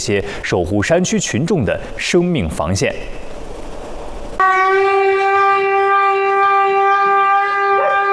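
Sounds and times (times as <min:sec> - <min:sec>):
speech: 0:00.0 - 0:03.2
hand-cranked alarm siren wailing: 0:04.4 - 0:08.1.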